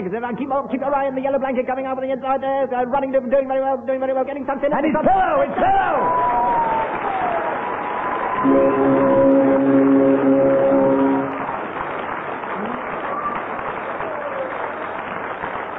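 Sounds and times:
speech: 0.0 - 6.6, 8.4 - 9.0
studio audience applause: 5.5 - 15.7
low steady horn-like tone: 8.4 - 11.6.

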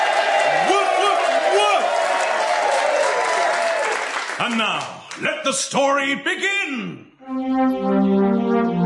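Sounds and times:
crowd cheering and applauding: 0.0 - 5.3
speech: 4.4 - 8.7.

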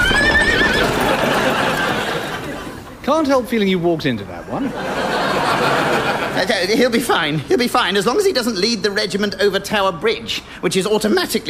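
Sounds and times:
horse neighing: 0.0 - 1.3
horse hooves galloping: 0.0 - 2.3
laughter: 0.0 - 3.0, 4.6 - 6.9
speech: 3.1 - 11.4.

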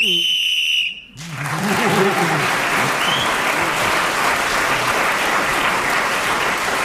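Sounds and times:
speech: 0.0 - 0.4
person whistling: 0.0 - 1.2, 3.0 - 3.4
laughter: 1.2 - 5.0
studio audience applause: 1.2 - 6.8.

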